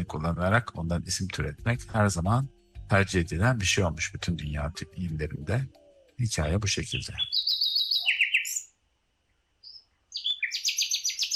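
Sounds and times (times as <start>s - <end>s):
speech: 0.0s - 7.5s
bulbul bird song: 4.4s - 11.3s.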